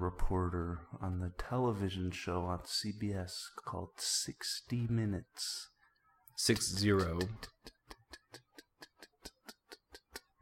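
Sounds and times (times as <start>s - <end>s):
speech: 0.0s - 5.7s, 6.4s - 7.8s
stopwatch ticking: 6.4s - 10.4s.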